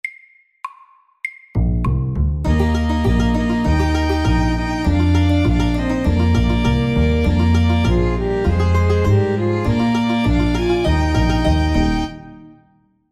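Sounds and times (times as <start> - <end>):
fast country and western music: 2.4 - 12.6.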